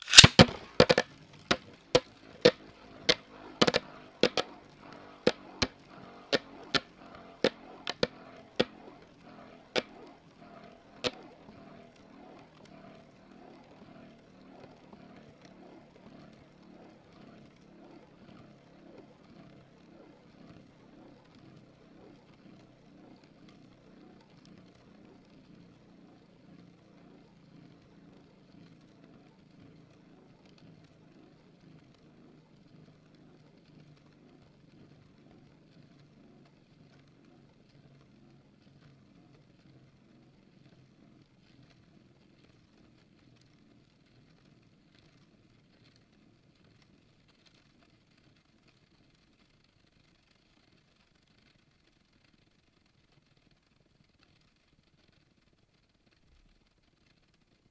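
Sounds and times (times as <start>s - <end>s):
spinning top: 0.0s - 1.7s, 2.5s - 4.5s, 5.3s - 8.8s, 9.8s - 10.0s.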